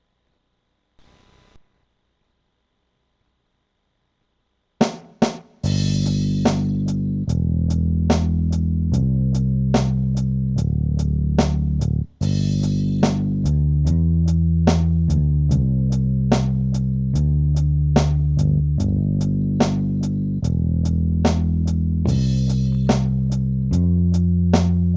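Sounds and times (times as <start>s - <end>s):
drums: 4.8s - 24.9s
bass: 5.6s - 24.9s.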